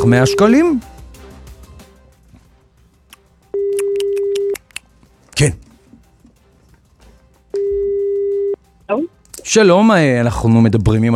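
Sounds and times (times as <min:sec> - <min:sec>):
speech: 0:00.0 - 0:00.9, 0:05.4 - 0:05.6, 0:08.9 - 0:11.1
telephone line ringing tone as a call is placed: 0:03.6 - 0:04.6, 0:07.6 - 0:08.6.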